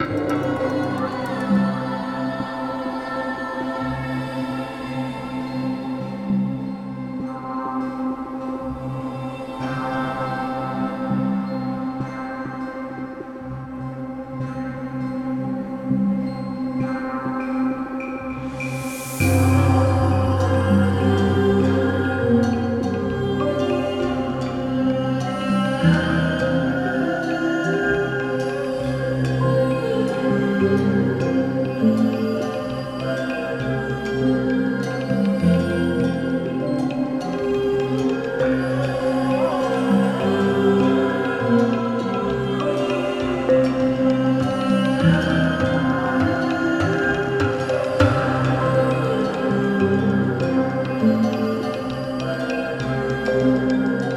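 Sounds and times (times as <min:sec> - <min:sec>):
ambient relaxation meditation music: 0:00.0 - 0:54.1.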